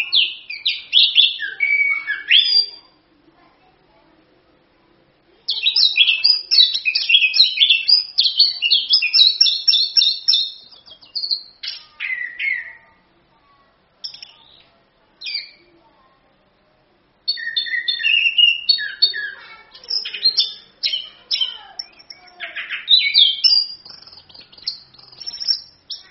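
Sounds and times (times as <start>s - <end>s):
orange-headed thrush singing: 0.0s - 2.9s, 5.5s - 13.0s, 14.0s - 15.7s, 17.3s - 26.0s.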